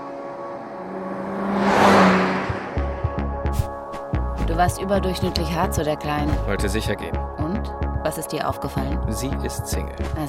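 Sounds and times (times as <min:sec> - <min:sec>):
car driving off: 0:00.0 - 0:04.5
speech: 0:04.6 - 0:10.2.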